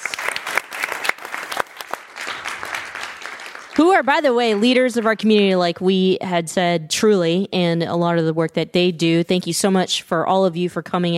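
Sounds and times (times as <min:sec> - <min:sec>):
room full of people clapping: 0:00.0 - 0:05.7
speech: 0:03.8 - 0:11.1.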